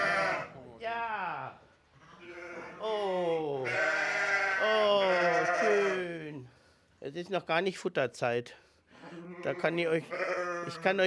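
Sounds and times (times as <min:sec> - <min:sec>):
sheep bleating in a small stable at the edge of monastery fields: 0:00.0 - 0:00.6, 0:02.1 - 0:02.9, 0:03.6 - 0:06.1, 0:09.2 - 0:11.0
speech: 0:07.2 - 0:11.0.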